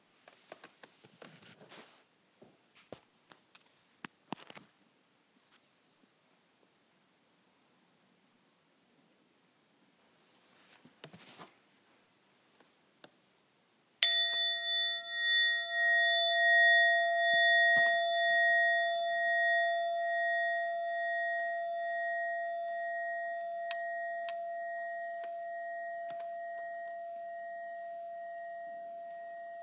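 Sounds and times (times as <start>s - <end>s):
faint rustles: 0.2s - 2.1s, 10.3s - 11.9s
meditation bell struck softly: 14.0s - 29.6s.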